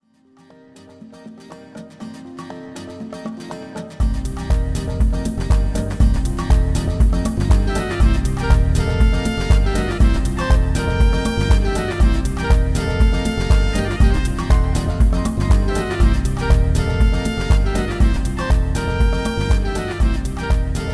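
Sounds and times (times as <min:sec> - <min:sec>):
tropical hip hop music: 0:00.9 - 0:20.9.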